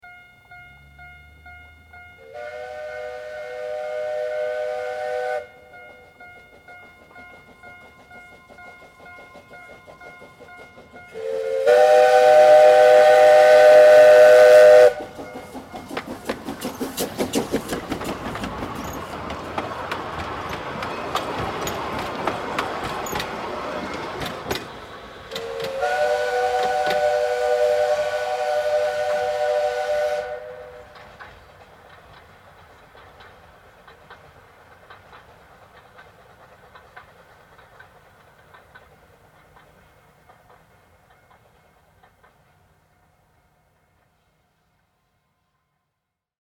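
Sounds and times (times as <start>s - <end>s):
steam locomotive whistle while passing: 2.2s - 6.2s, 11.1s - 15.6s, 25.3s - 31.2s.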